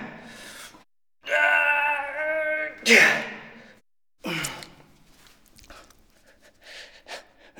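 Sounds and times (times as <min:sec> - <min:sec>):
person groaning while lifting a heavy object: 0:01.3 - 0:03.5, 0:04.3 - 0:04.7.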